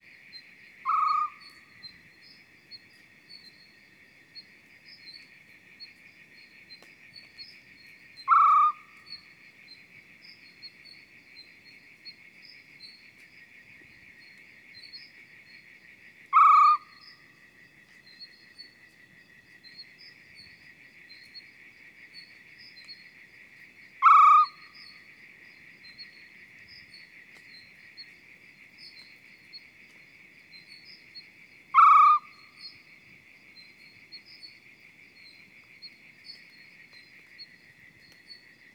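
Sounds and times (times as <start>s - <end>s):
male Arabian Scops Owl hooting: 0.8s - 1.4s, 8.3s - 8.8s, 16.3s - 16.9s, 24.0s - 24.6s, 31.7s - 32.4s.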